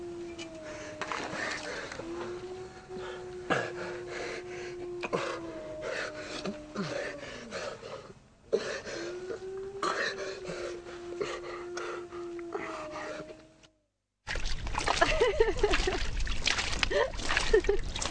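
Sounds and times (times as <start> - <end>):
low steady hum: 0.0 - 18.0
water sloshing and splashing in a water jar: 14.3 - 18.0.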